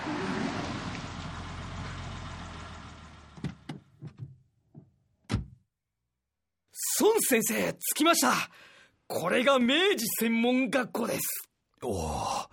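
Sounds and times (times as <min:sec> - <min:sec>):
car engine rumbling: 0:00.0 - 0:04.3
car doors opening and slamming shut: 0:03.3 - 0:04.4, 0:05.2 - 0:05.6
speech: 0:07.0 - 0:12.3.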